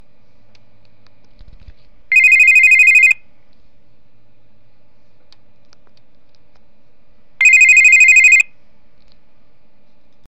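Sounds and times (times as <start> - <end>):
classic tone phone ringtone: 2.1 - 3.2, 7.4 - 8.5.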